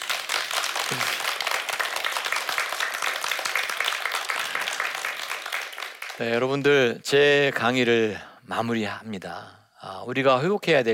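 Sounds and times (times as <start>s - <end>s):
audience applause: 0.0s - 6.3s
speech: 6.2s - 10.9s.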